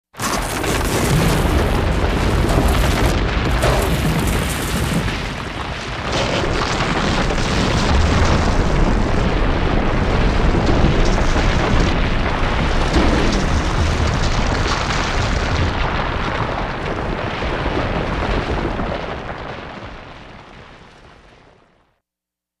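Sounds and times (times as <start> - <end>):
explosive earth rock earthquake rumble: 0.1 - 21.8.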